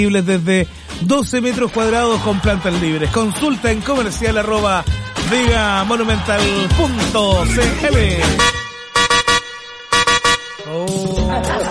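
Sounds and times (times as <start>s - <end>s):
speech: 0.0s - 8.6s
laughter: 1.9s - 4.3s, 10.9s - 11.6s
car horn honking: 8.2s - 10.8s.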